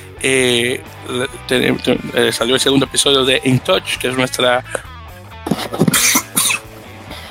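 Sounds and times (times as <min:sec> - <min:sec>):
speech: 0:00.2 - 0:04.9
person with flu coughing: 0:05.5 - 0:06.7.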